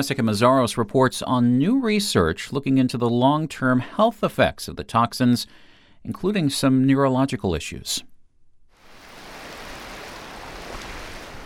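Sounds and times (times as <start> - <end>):
speech: 0.0 - 8.1
ocean waves washing onto white sand of Siesta Key Beach in Florida: 8.8 - 11.4.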